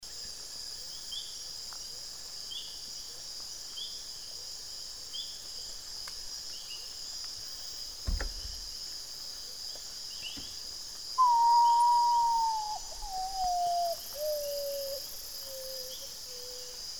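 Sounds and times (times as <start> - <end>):
common potoo calling: 11.2 - 16.0.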